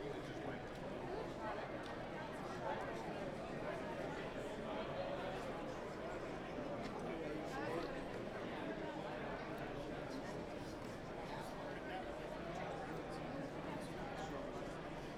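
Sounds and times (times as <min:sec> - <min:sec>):
convention crowd noise: 0:00.0 - 0:15.1.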